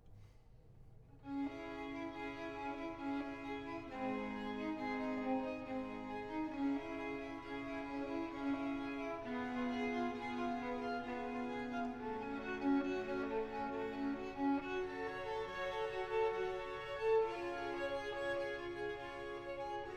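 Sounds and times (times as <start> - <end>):
violin concerto with strings, slow movement: 1.2 - 19.9.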